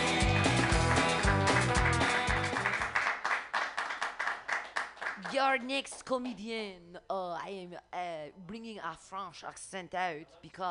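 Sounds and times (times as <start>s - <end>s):
upbeat music sting: 0.0s - 3.0s
audience clapping: 0.0s - 6.3s
speech: 5.4s - 10.7s.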